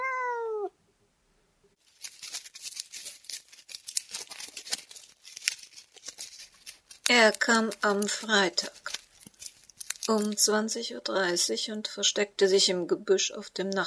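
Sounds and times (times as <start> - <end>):
cat meowing: 0.0 - 0.8
crackling rustling noise: 1.8 - 11.5
speech: 7.2 - 8.8, 10.1 - 13.8.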